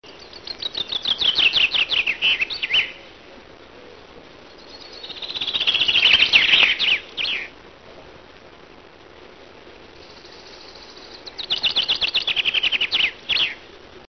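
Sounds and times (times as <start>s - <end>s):
chaffinch singing: 0.1s - 3.0s, 4.5s - 7.5s, 10.0s - 13.6s.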